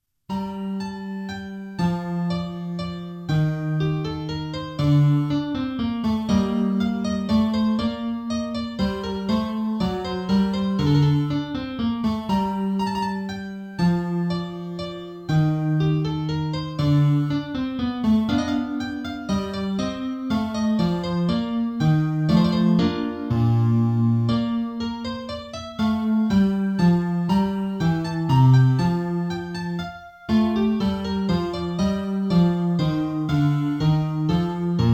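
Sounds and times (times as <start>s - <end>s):
fortepiano: 0.0s - 34.9s.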